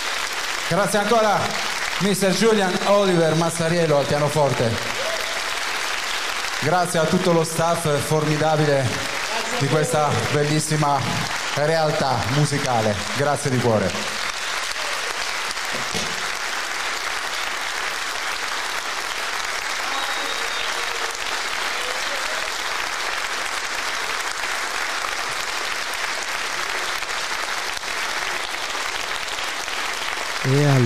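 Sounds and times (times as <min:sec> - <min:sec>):
large theater audience applauding: 0:00.0 - 0:30.8
speech: 0:00.7 - 0:05.0, 0:06.6 - 0:14.2.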